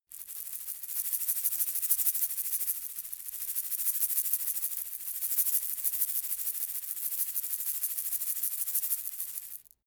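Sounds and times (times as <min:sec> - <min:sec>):
plastic egg shaker rattling softly: 0:00.1 - 0:09.8.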